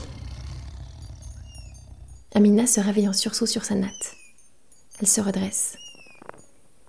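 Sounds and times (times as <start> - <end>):
lion roaring: 0.0 - 2.2
speech: 2.3 - 4.2, 5.0 - 5.8.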